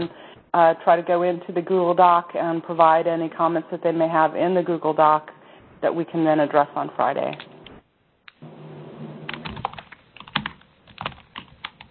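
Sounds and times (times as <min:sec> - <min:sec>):
speech: 0:00.0 - 0:07.6
low steady hum: 0:00.0 - 0:11.8
typing on a computer keyboard: 0:09.3 - 0:11.8.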